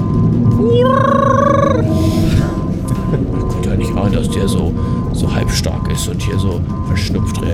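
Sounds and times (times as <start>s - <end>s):
constant low rumbling background: 0.0s - 7.5s
loud whale call rising tonal moan: 0.5s - 2.8s
speech: 4.4s - 7.5s.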